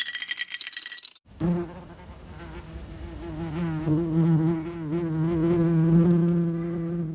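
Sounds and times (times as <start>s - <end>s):
metallic clinking: 0.0s - 1.2s
bumblebee or wasp buzzing: 1.3s - 7.1s.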